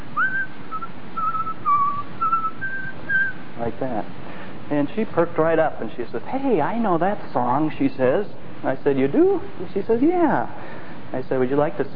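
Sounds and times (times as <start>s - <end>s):
soft whistling of a slow melody: 0.2s - 3.4s
speech: 3.7s - 11.9s.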